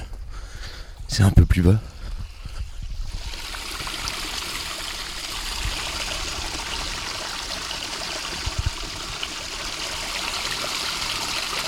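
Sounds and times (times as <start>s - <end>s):
speech: 1.1s - 1.9s
water rushing through an underground pipe: 3.0s - 11.6s.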